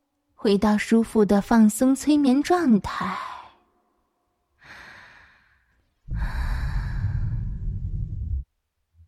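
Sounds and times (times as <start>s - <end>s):
speech: 0.4s - 3.3s
person breathing out during a relaxation exercise: 4.6s - 8.1s.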